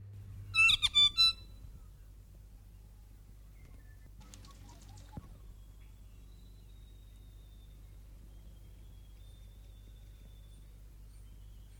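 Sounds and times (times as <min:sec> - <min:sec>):
low rumble: 0:00.0 - 0:11.7
saddleback tīeke rasping chattering call: 0:00.6 - 0:01.5.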